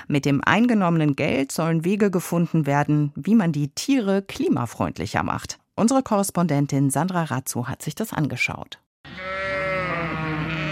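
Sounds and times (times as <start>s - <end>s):
speech: 0.1s - 9.3s
sheep bleating at a research farm in Invercargill New Zealand: 9.1s - 10.6s.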